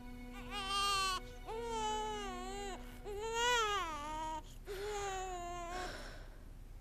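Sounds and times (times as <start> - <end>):
baby crying: 0.3 - 5.9.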